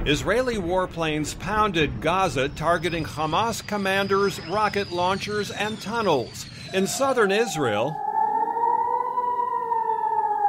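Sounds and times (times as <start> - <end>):
speech: 0.0 - 8.1
air raid siren wailing: 3.2 - 10.4.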